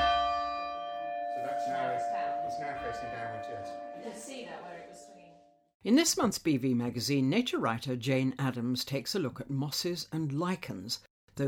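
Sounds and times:
church bells ringing: 0.0 - 5.5
speech: 2.6 - 5.2, 5.8 - 11.4.

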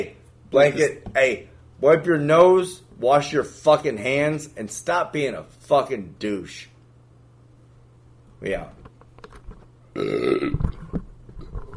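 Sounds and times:
speech: 0.0 - 6.7, 8.4 - 8.8, 10.0 - 10.8
loud rumbling gravelly burp: 9.9 - 10.8.

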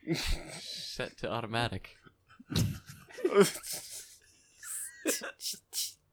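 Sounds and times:
speech: 0.1 - 3.9, 5.1 - 5.9
laughter: 2.5 - 5.4
cat sneezing: 2.6 - 2.8.

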